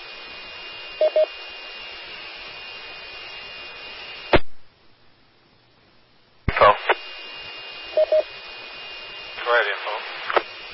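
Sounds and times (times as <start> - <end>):
radio static hiss: 0.0 - 4.7, 6.4 - 10.7
short radio beeps: 1.0 - 1.3, 8.0 - 8.3
speech: 1.2 - 1.6
radio carrier cutting off with a click: 10.2 - 10.5.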